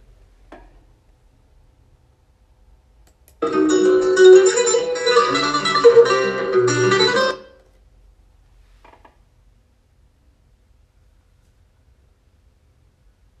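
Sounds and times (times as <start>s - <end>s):
acoustic guitar playing rich ringing chords: 3.4s - 7.6s.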